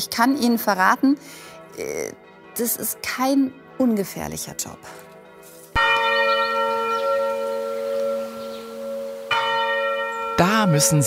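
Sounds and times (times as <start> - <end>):
speech: 0.0 - 5.0, 10.6 - 11.0
large church bell striking in a church tower: 2.2 - 11.0.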